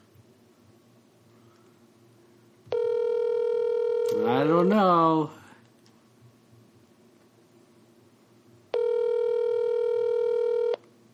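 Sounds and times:
faint hiss: 0:00.0 - 0:11.1
telephone tone during an outgoing call: 0:02.7 - 0:04.3, 0:08.7 - 0:10.9
speech: 0:04.2 - 0:05.4.

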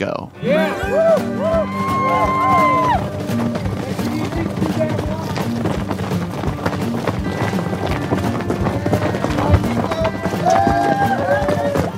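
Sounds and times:
speech: 0:00.0 - 0:01.3
scattered voices and whoops in the crowd: 0:00.4 - 0:03.6, 0:10.4 - 0:11.9
running footsteps of runners at a race start: 0:00.5 - 0:11.9
clip-clopping hooves of horses at a race start: 0:00.7 - 0:11.9.

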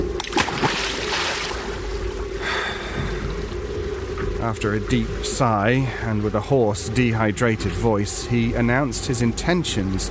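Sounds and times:
low hum: 0:00.0 - 0:10.0
radio dropping into water with a splash: 0:00.2 - 0:01.8
steady sloshing water: 0:00.2 - 0:04.6
speech: 0:04.4 - 0:10.0.

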